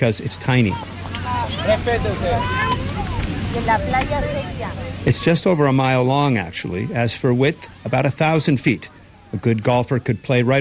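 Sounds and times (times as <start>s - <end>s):
speech: 0.0s - 2.9s, 3.6s - 10.5s
low engine drone from boats: 0.0s - 7.9s
crowd murmuring on a busy island pier: 0.0s - 10.5s
faint wind: 0.0s - 10.5s
lapping water: 0.0s - 10.5s.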